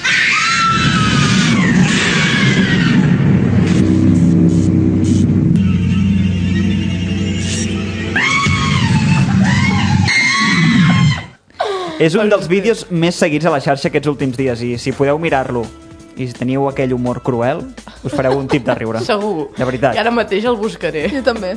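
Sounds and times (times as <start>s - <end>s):
terrified people screaming inside an elevator: 0.0s - 3.6s, 8.1s - 11.4s
low mechanical rumble: 0.7s - 10.1s
laughter: 8.7s - 10.1s, 17.9s - 20.0s
speech: 12.0s - 21.5s.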